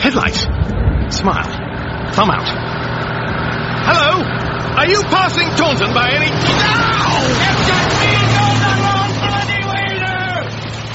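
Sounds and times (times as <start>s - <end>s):
low car engine rumble: 0.0s - 10.9s
car driving through standing water: 0.3s - 10.9s
speech: 1.2s - 1.6s, 2.2s - 2.8s, 3.9s - 8.9s.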